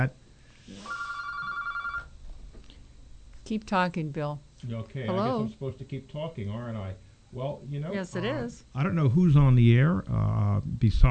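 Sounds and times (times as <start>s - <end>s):
speech: 0.0s - 0.2s, 3.5s - 11.0s
telephone ringing for an incoming call: 0.8s - 2.2s.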